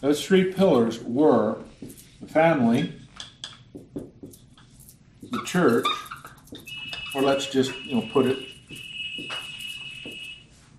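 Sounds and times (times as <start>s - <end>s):
speech: 0.0s - 1.7s, 2.3s - 3.0s, 5.4s - 6.1s, 7.1s - 8.5s
high steady electronic alarm tone: 6.6s - 10.6s.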